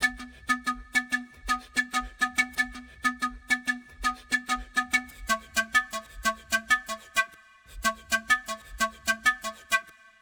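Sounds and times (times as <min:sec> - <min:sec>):
pan flute in B minor: 0:00.0 - 0:10.1.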